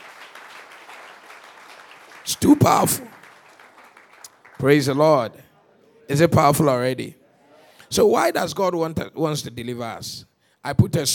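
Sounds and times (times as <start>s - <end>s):
audience applauding: 0.0s - 5.0s
speech: 2.3s - 3.1s, 4.6s - 5.5s, 6.1s - 7.2s, 7.9s - 11.1s.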